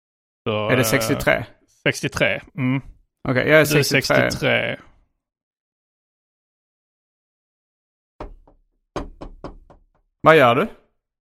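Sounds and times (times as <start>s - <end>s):
speech: 0.4s - 4.9s, 10.2s - 10.8s
knocking on a door: 8.2s - 10.0s.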